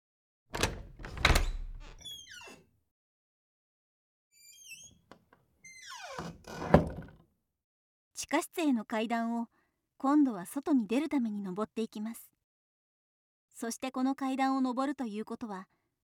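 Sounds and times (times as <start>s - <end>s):
door opening with heavy clunks: 0.5s - 2.6s
high squeaky door hinge creaks: 0.5s - 2.6s, 4.4s - 6.8s
speech: 8.3s - 12.3s, 13.6s - 15.8s.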